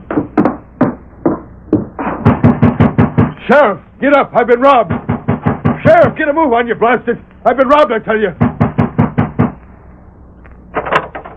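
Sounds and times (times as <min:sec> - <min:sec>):
heavy urgent pounding on the wooden door of a home at night: 0:00.0 - 0:03.4, 0:04.8 - 0:06.2, 0:08.4 - 0:09.6
speech: 0:03.5 - 0:05.0, 0:05.8 - 0:08.4.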